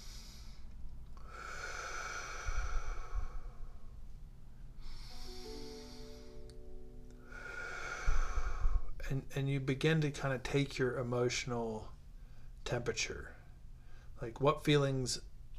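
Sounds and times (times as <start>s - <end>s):
slow deep belly breathing: 0.0s - 9.1s, 11.9s - 12.6s, 13.3s - 14.2s
soft tone: 2.6s - 15.5s
speech: 9.1s - 12.0s, 12.7s - 13.4s, 14.2s - 15.3s.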